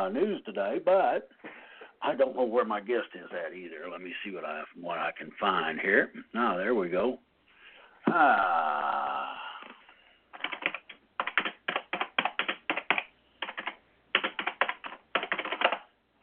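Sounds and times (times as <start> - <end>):
speech: 0.0 - 7.3, 8.1 - 9.4
keyboard typing: 10.3 - 15.9.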